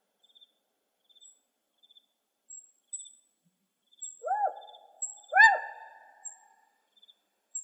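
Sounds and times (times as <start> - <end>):
spotted owl calling in Arizona: 4.2 - 6.4.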